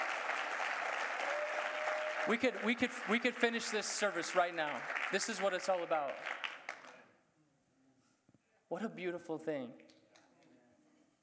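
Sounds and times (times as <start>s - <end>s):
large church audience clapping hands: 0.0s - 7.0s
speech: 2.3s - 6.4s, 8.7s - 9.9s.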